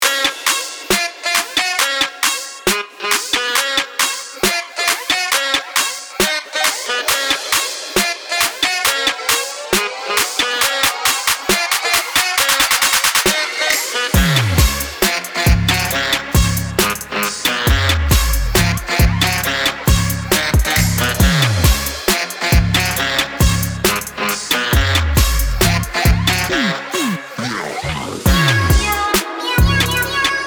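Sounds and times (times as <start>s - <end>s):
saxophone: 0.0s - 30.4s.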